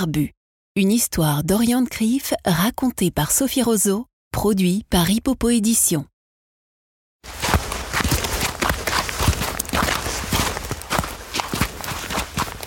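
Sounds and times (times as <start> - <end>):
speech: 0.0 - 6.1, 7.2 - 7.4
footsteps of people walking in snowshoes on a snowy ridge in a mountain park: 7.2 - 12.6.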